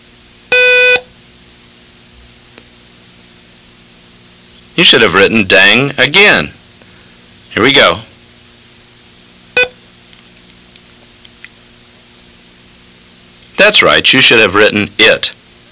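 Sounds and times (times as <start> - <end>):
long buzzy electronic beep in a listening exercise: 0.5 - 1.1, 9.6 - 9.8
speech: 4.8 - 6.6, 7.5 - 8.1, 13.7 - 15.4.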